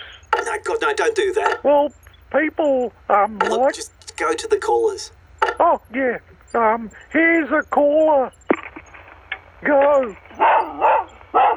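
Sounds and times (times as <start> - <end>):
speech: 0.5 - 8.4, 9.6 - 10.5
dog barking: 10.3 - 11.5.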